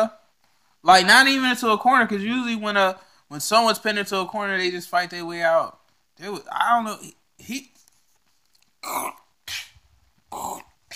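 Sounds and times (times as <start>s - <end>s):
speech: 0.0s - 0.2s, 0.8s - 7.8s, 8.8s - 9.7s, 10.3s - 10.7s
voice imitating a shovel digging a grave: 8.8s - 10.9s.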